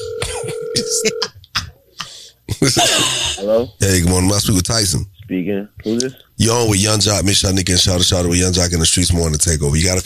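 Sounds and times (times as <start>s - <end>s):
telephone line tone: 0.0s - 1.2s
speech: 0.8s - 1.4s, 2.6s - 10.0s.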